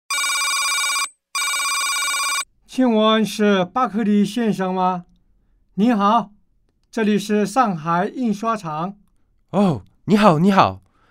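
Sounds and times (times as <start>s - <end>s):
telephone bell ringing: 0.1s - 2.5s
speech: 2.7s - 5.1s, 5.8s - 10.8s.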